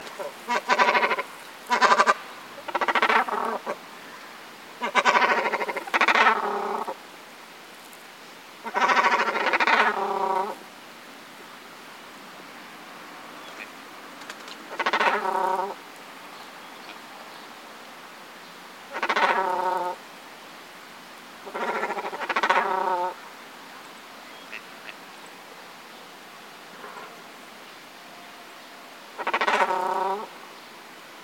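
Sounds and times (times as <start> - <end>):
great cormorant calling: 0.0 - 7.0, 8.6 - 10.6, 14.7 - 15.8, 18.9 - 20.0, 21.4 - 23.2, 24.4 - 25.1, 29.2 - 30.4.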